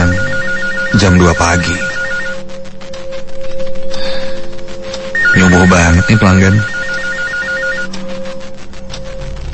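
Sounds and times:
call center telephone ringing with a warbling electronic trill: 0.0s - 2.7s, 5.1s - 8.5s
rhythmic buzzing: 0.0s - 9.5s
steady tone: 0.0s - 9.5s
speech: 1.0s - 2.0s, 5.4s - 6.8s.

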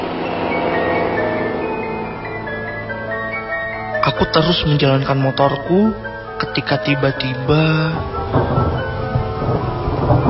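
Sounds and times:
deep rumbling undertone: 0.0s - 10.2s
rain falling at night on an intercity road in Indonesia: 4.0s - 10.2s
speech: 4.1s - 8.9s.

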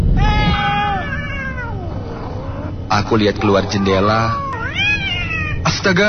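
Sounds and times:
cat meowing in a yard: 0.0s - 5.8s
speech: 3.0s - 4.4s, 5.6s - 6.0s.

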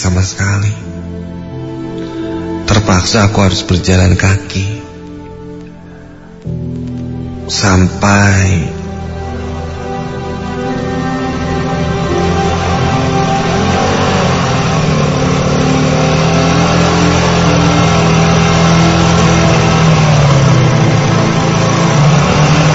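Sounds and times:
speech: 0.2s - 1.0s, 2.7s - 4.8s, 7.5s - 8.8s
motorcycle engine approaching on a road at night: 6.5s - 22.7s.

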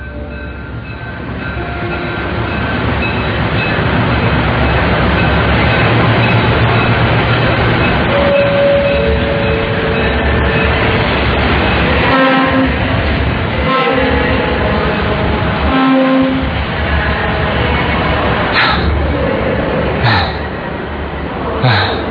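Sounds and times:
passenger train rumbling along the rails: 0.0s - 22.0s
faint voices: 21.2s - 22.0s.

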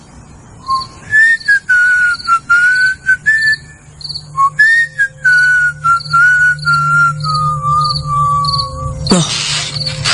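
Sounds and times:
crickets chirping: 0.0s - 10.1s
low hum: 0.0s - 10.1s
person whistling a slow wavering melody: 0.7s - 3.8s, 4.4s - 9.3s
speech: 9.1s - 9.4s.

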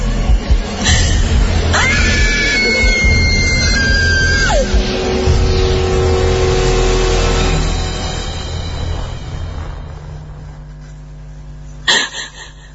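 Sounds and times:
constant low rumbling background: 0.0s - 12.0s
terrified woman screaming loudly: 1.7s - 4.8s.

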